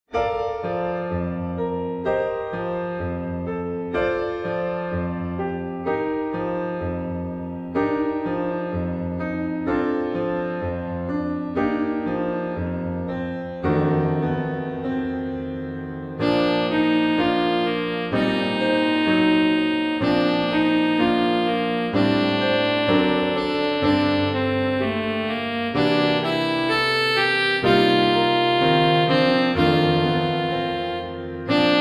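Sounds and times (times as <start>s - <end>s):
romantic saxophone music: 0.6s - 31.8s.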